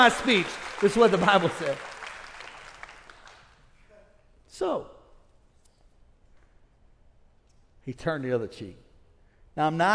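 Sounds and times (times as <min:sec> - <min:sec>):
speech: 0:00.0 - 0:01.9, 0:04.6 - 0:04.9, 0:07.9 - 0:08.8, 0:09.6 - 0:09.9
small crowd clapping: 0:00.0 - 0:03.7.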